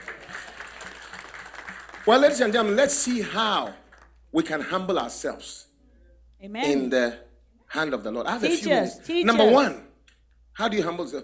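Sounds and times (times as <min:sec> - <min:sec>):
audience clapping: 0:00.0 - 0:04.6
speech: 0:02.1 - 0:05.7, 0:06.4 - 0:09.8, 0:10.6 - 0:11.2.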